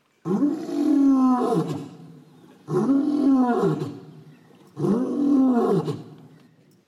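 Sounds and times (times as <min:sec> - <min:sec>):
lion roaring: 0:00.3 - 0:04.1, 0:04.7 - 0:06.2.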